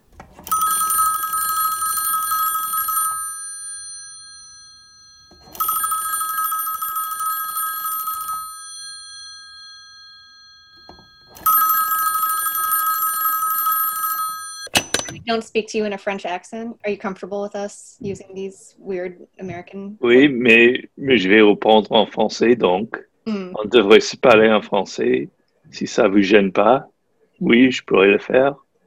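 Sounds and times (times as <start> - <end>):
telephone ringing during an outgoing phone call: 0.4 - 15.3
speech: 15.3 - 28.6.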